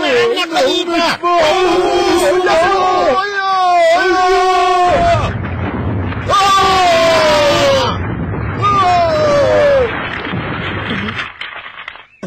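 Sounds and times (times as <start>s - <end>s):
excited people shouting and yelling: 0.0s - 5.4s, 6.2s - 10.1s
deep rumbling cannon blast: 4.8s - 11.4s.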